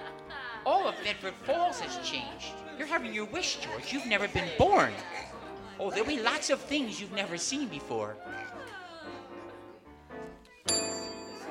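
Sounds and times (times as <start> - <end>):
laughter: 0.0 - 9.8
speech: 0.8 - 8.6
bright bell ringing: 10.7 - 11.4.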